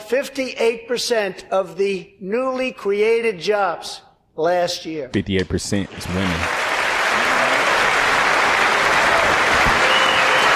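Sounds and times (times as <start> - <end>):
speech: 0.1 - 6.6
large crowd of congress members applauding in a big hall: 5.9 - 10.5.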